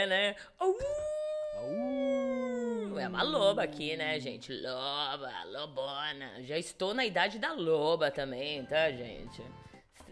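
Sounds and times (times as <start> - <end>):
speech: 0.0 - 9.7
people imitating wolf howls: 1.3 - 4.4.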